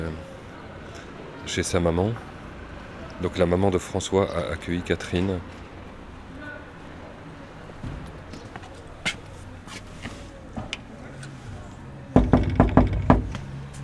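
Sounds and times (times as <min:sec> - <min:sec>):
speech: 0:00.0 - 0:00.3, 0:01.4 - 0:02.3, 0:03.2 - 0:05.6
faint murmur: 0:00.0 - 0:13.8
door left ajar creaking open: 0:12.2 - 0:13.4
knocks: 0:12.2 - 0:13.4.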